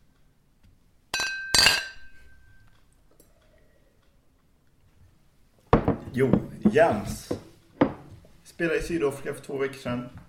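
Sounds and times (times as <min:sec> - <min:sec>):
glasses clinking in a toast: 0:01.1 - 0:02.7
speech: 0:06.2 - 0:07.3, 0:08.6 - 0:10.2.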